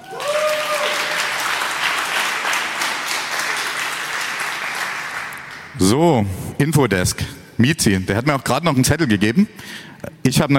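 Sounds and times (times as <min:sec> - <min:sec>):
audience applause: 0:00.0 - 0:05.8
speech: 0:05.8 - 0:10.5.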